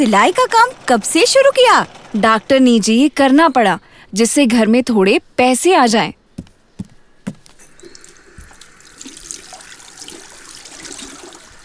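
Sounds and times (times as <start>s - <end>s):
speech: 0.0s - 6.2s
sharp knocks: 6.4s - 7.6s
water running from a tap into a sink: 8.0s - 11.6s.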